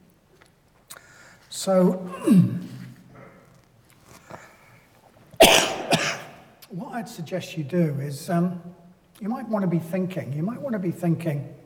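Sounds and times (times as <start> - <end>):
speech: 1.6 - 2.7, 6.9 - 11.6
person coughing: 2.1 - 2.7, 5.4 - 6.4.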